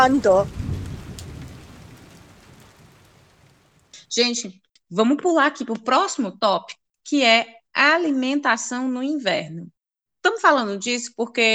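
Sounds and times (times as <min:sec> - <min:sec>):
speech: 0:00.0 - 0:00.6, 0:04.2 - 0:11.5
soft low rumble: 0:00.0 - 0:03.8
rain falling outside: 0:00.0 - 0:04.1.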